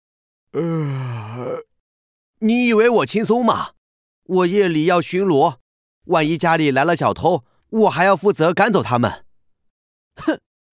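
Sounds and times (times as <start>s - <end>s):
speech: 0.5s - 1.7s, 2.4s - 9.2s, 10.2s - 10.4s
voice imitating a dog yawning: 0.6s - 1.7s.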